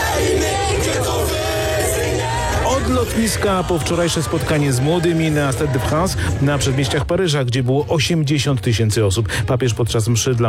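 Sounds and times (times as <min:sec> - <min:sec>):
scattered yells: 0:00.0 - 0:05.9
large crowd cheering and shouting: 0:00.0 - 0:07.2
speech: 0:02.9 - 0:10.4.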